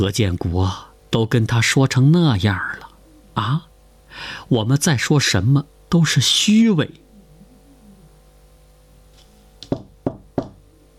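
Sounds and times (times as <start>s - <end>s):
speech: 0.0s - 7.0s
sharp knocking on a door: 9.6s - 10.6s.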